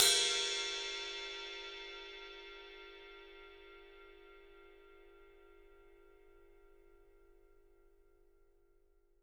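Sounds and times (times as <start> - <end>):
ride cymbal in 3D drums: 0.0 - 3.2.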